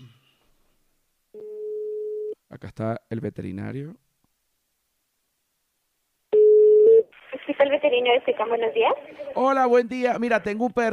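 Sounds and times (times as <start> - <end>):
telephone tone while placing a call to a veterinarian: 1.4 - 2.4, 6.4 - 7.1
speech: 2.6 - 4.0, 7.6 - 10.9.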